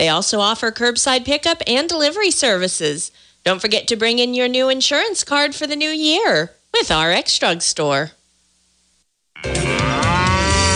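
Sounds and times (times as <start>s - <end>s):
speech: 0.0s - 8.2s
cow mooing: 9.4s - 10.7s.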